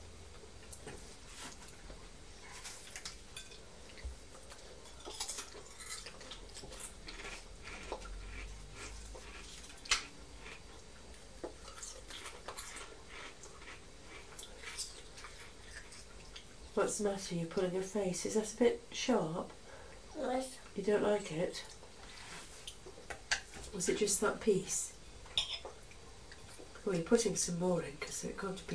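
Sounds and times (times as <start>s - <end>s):
speech: 16.8s - 19.6s, 20.2s - 21.8s, 23.8s - 24.9s, 26.9s - 28.7s
child eating with a metal spoon from a crockery plate: 25.4s - 25.7s.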